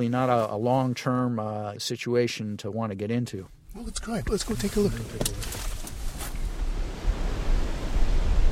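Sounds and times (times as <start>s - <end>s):
speech: 0.0s - 5.7s
low wind rumble on the microphone: 4.2s - 8.5s
ocean waves breaking on beach: 6.3s - 8.5s.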